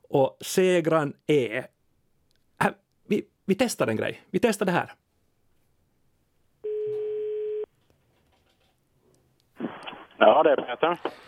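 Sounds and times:
speech: 0:00.1 - 0:01.8, 0:02.6 - 0:05.0, 0:10.2 - 0:11.2
telephone ringback tone while placing a call: 0:06.6 - 0:07.7.

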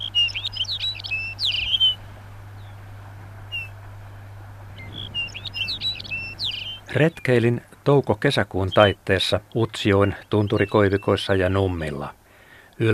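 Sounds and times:
Lapland bunting singing tinkling phrases of high notes: 0:00.0 - 0:02.0, 0:03.5 - 0:03.8, 0:04.7 - 0:07.3, 0:10.3 - 0:11.2
constant low hum: 0:00.0 - 0:11.1.

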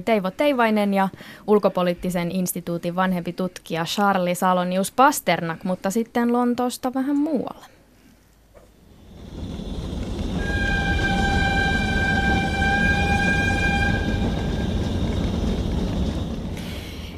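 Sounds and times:
speech: 0:00.0 - 0:07.8
train rumbling on rails: 0:08.8 - 0:17.1.

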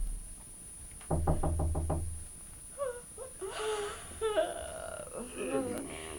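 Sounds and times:
knocking on a door: 0:01.1 - 0:02.3
drowsy moaning and mumbled vocal sounds: 0:02.8 - 0:06.1.

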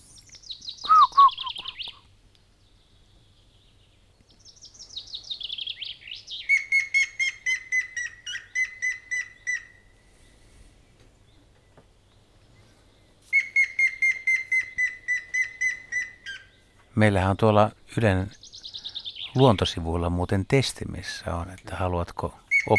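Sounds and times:
grey-headed woodpecker calling with whistled and piping notes: 0:00.1 - 0:02.1, 0:04.3 - 0:10.0, 0:11.3 - 0:16.9, 0:18.3 - 0:19.7, 0:22.5 - 0:22.7
speech: 0:17.0 - 0:18.4, 0:19.4 - 0:22.7.

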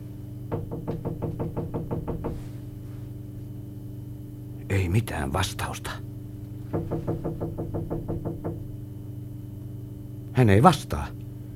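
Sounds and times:
low hum: 0:00.0 - 0:11.5
knocking on wooden cabin door: 0:00.5 - 0:02.5, 0:06.7 - 0:08.8
speech: 0:04.9 - 0:06.1, 0:10.4 - 0:11.2.

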